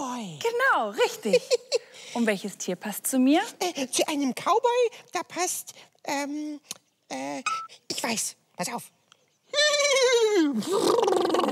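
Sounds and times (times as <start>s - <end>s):
speech: 0.5s - 11.5s
voice imitating a horse's whinny: 9.6s - 11.5s.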